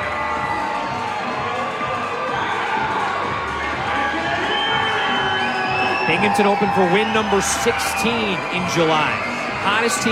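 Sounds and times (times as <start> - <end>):
large baseball crowd cheering in the stands: 0.0 - 10.1
speech: 6.1 - 10.1.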